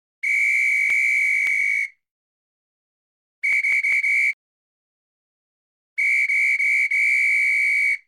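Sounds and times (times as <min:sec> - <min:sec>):
whistle: 0:00.2 - 0:02.0, 0:03.4 - 0:04.4, 0:06.0 - 0:08.0.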